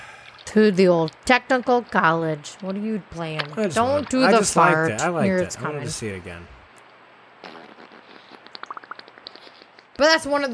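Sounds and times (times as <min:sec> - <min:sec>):
speech: 0:00.5 - 0:06.6, 0:10.0 - 0:10.5
beaver fart-like sputter with squeaky bubbling pops: 0:07.4 - 0:09.8.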